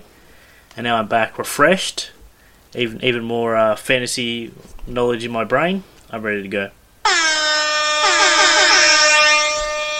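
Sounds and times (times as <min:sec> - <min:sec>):
speech: 0:00.8 - 0:06.8
air horn blast: 0:07.1 - 0:09.9.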